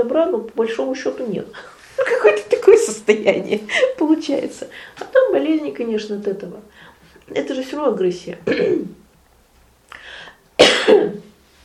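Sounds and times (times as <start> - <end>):
speech: 0.0 - 9.0
person with sore throat coughing: 8.4 - 9.0, 10.6 - 11.3
soft raspy throat clearing: 8.4 - 9.0, 10.6 - 11.3.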